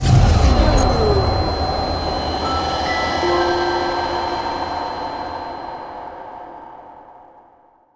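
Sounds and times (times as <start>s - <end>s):
fail sound: 0.4s - 5.2s.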